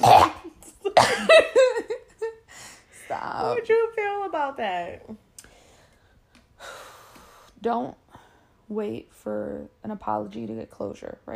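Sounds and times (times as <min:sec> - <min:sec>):
harsh coughs trailing into throaty sounds: 0:00.0 - 0:01.5
speech: 0:04.4 - 0:05.2, 0:07.6 - 0:08.0, 0:08.7 - 0:11.3.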